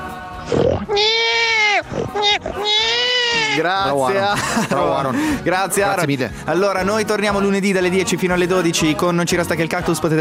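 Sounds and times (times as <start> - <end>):
pig grunting and squealing as a greeting: 0.4 - 3.7
laughter: 2.2 - 5.4
speech: 3.6 - 10.1.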